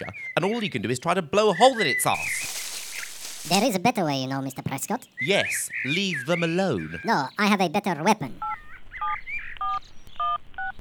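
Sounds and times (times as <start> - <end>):
speech: 0.4 - 2.4, 3.4 - 8.6
mobile phone keypad tones while dialing: 8.4 - 10.7.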